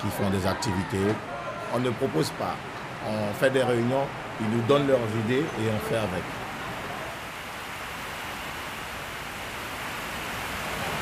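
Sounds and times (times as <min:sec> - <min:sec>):
speech: 0:00.0 - 0:06.4
heavy rain pouring down in French Guiana: 0:03.1 - 0:11.0.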